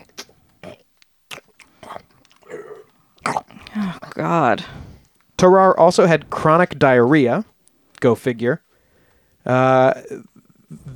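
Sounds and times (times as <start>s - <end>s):
voice imitating wet noisy belching: 0.0s - 4.5s
voice imitating sticky swallowing: 0.0s - 5.4s
speech: 3.8s - 4.8s, 5.4s - 8.6s, 9.4s - 10.3s.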